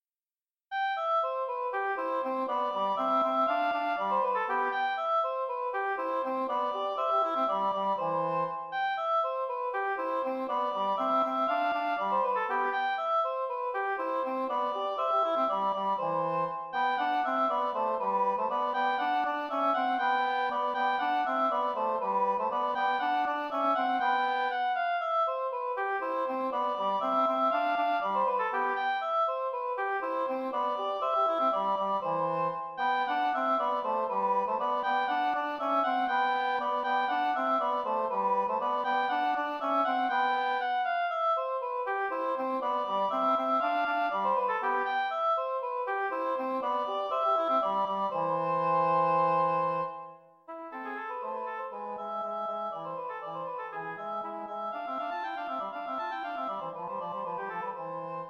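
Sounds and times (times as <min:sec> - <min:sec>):
two oboes playing: 0:00.7 - 0:58.2.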